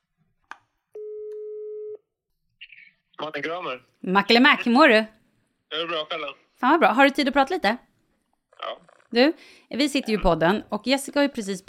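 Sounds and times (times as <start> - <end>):
phone ringing tone while a call is being placed: 1.0 - 2.0
speech: 3.2 - 7.9, 8.6 - 11.6.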